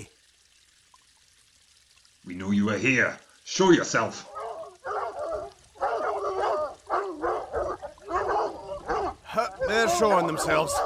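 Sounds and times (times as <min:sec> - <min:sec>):
speech: 0:02.3 - 0:04.3, 0:09.8 - 0:10.8
hounds barking and yelping excitedly: 0:04.1 - 0:10.8.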